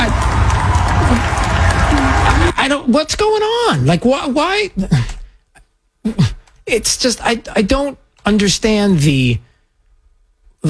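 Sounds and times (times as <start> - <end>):
dense crowd at a church cheering and shouting: 0.0 - 2.6
speech: 2.7 - 5.1, 6.0 - 9.5.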